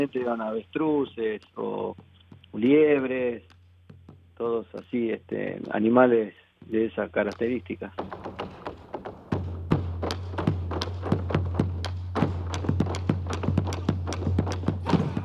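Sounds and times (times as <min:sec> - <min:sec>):
speech: 0:00.0 - 0:03.6, 0:04.4 - 0:08.4
malambo zapateo heel-and-sole foot stamping: 0:00.0 - 0:15.2.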